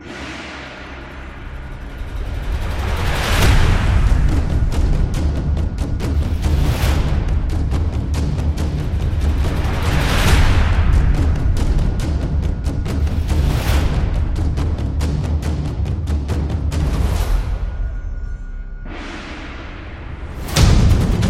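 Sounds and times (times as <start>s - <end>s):
taiko drums: 1.7s - 18.0s, 20.1s - 21.2s.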